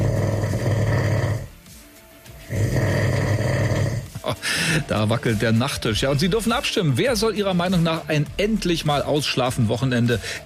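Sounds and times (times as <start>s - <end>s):
loud rasping human snoring: 0.0s - 1.6s, 2.4s - 4.9s
speech: 4.8s - 10.4s.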